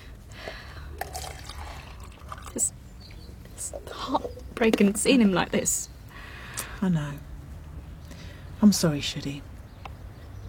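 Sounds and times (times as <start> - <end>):
coffee pouring into a cup: 1.0 - 2.7
speech: 2.6 - 2.8, 4.1 - 5.9, 6.8 - 7.3, 8.6 - 9.5.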